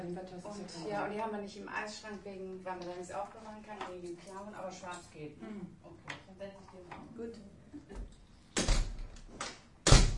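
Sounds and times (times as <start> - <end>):
speech: 0.1 - 8.2
door pushed shut: 8.6 - 9.0, 9.8 - 10.1
door banging as it closes fully: 8.6 - 9.1, 9.8 - 10.1.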